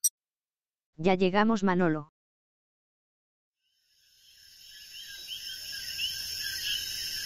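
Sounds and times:
speech: 1.0 - 2.1
coquí frogs chirping at night: 3.7 - 7.2
high buzz of crickets at night: 3.7 - 7.2.

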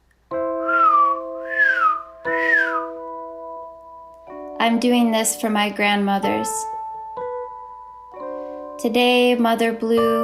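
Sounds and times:
person whistling swooping notes: 0.6 - 3.0
speech: 4.6 - 6.7, 8.8 - 10.2.

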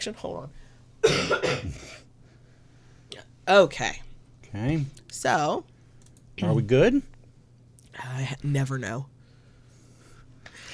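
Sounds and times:
speech: 0.0 - 2.1, 3.1 - 5.7, 6.4 - 7.1, 8.0 - 9.1
single harsh throaty cough: 1.0 - 2.1.

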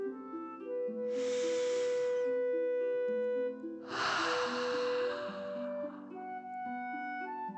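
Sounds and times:
steady soft musical drone: 0.0 - 7.5
deep breaths in through the nose and out through the mouth: 1.1 - 2.4, 3.8 - 6.2.

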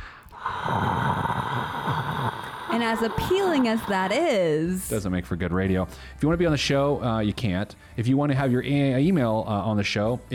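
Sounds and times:
voice imitating a droning studio air conditioner: 0.6 - 5.0
speech: 2.8 - 10.3.

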